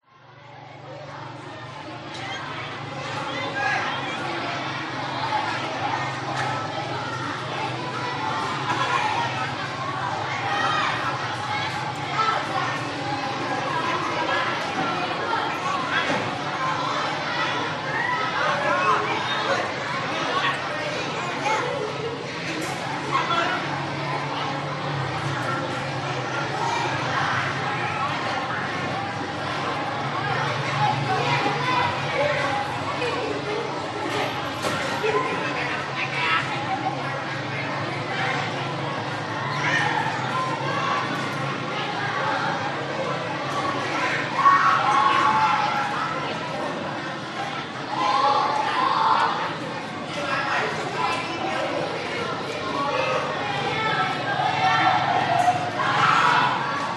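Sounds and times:
busy school playground children walla in Vietnam: 0.0s - 56.9s.

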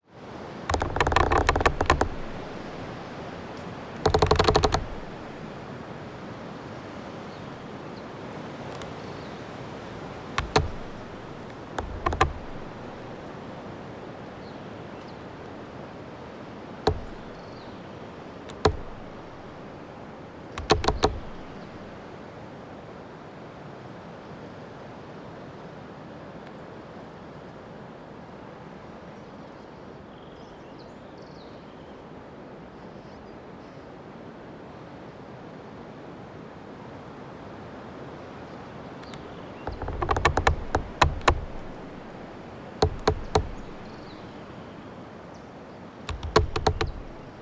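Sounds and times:
tree creaking close up in Patagonian woodland in Argentina: 0.6s - 5.7s, 8.6s - 13.5s, 16.4s - 22.2s, 39.0s - 44.8s, 46.1s - 47.4s.

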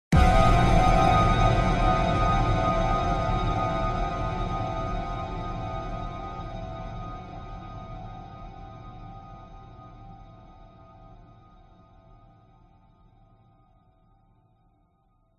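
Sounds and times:
bright discordant horror jump scare hit with long tail: 0.1s - 7.4s.

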